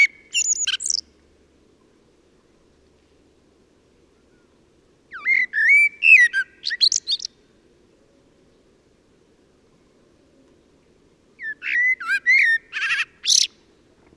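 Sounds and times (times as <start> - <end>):
common blackbird Turdus merula singing: 0.0 - 1.1, 4.2 - 7.4, 11.4 - 13.6.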